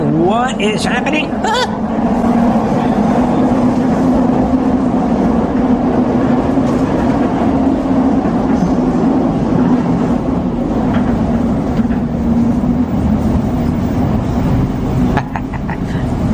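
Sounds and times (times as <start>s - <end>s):
moving train interior rumble: 0.0s - 16.3s
speech: 0.2s - 2.2s
laughter: 15.1s - 16.1s.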